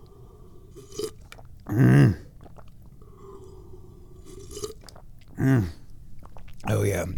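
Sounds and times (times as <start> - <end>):
loud slurping sips of tea: 0.0 - 5.1
faint crunchy chewing of rice cereal: 0.7 - 3.6, 4.2 - 6.7
small mouth sounds: 1.6 - 2.5, 5.3 - 5.9.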